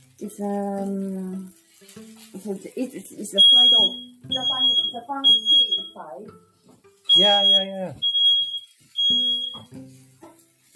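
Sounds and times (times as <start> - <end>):
speech: 0.2 - 6.5, 7.1 - 8.1, 9.1 - 10.1
smoke alarm beeping: 3.4 - 6.1, 7.1 - 9.7.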